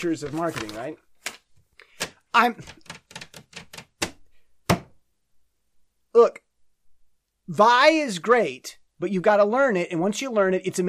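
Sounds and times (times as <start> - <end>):
speech: 0.0 - 1.1, 2.3 - 3.0, 6.2 - 6.4, 7.5 - 10.8
paper being rattled: 0.0 - 3.9.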